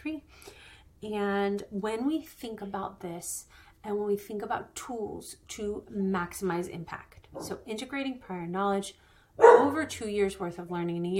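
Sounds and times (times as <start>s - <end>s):
speech: 1.0s - 11.1s
dog barking: 9.4s - 9.9s.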